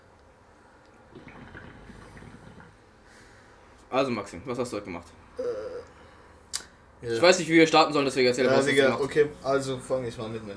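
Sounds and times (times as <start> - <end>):
hookah water bubbling: 0.8 - 3.7, 5.4 - 6.0
speech: 1.2 - 1.6, 3.9 - 5.6, 7.0 - 10.5.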